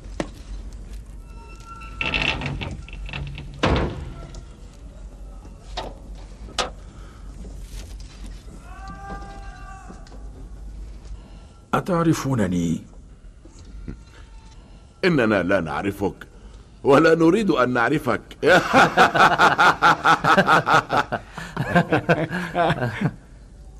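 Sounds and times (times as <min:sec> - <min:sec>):
door swinging shut with a rattle and a solid thud: 0:01.9 - 0:04.5
speech: 0:11.8 - 0:12.9, 0:15.0 - 0:23.2
laughter: 0:18.4 - 0:23.3.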